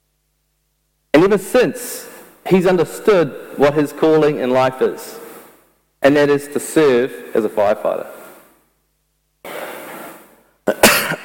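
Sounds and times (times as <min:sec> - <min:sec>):
speech: 0:01.2 - 0:05.2, 0:06.0 - 0:08.2
raspy exhale: 0:09.4 - 0:10.5
person coughing: 0:10.6 - 0:11.2.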